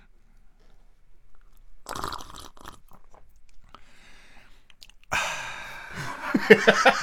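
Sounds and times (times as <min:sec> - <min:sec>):
crunchy eating of instant crab soup: 0:00.4 - 0:05.2
loud long hissing slurp of instant crab soup made with hot water: 0:01.9 - 0:02.9
breaths: 0:03.7 - 0:06.4
laughter: 0:06.0 - 0:07.0.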